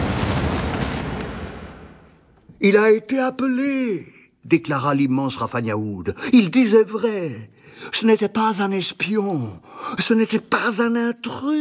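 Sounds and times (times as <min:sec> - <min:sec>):
loud explosion burst with crackling debris: 0:00.0 - 0:02.4
speech: 0:02.6 - 0:11.6.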